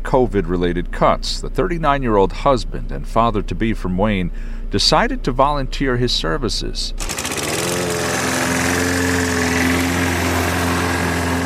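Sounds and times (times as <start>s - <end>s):
speech: 0.1s - 7.1s
lawn mower engine running: 6.9s - 11.4s.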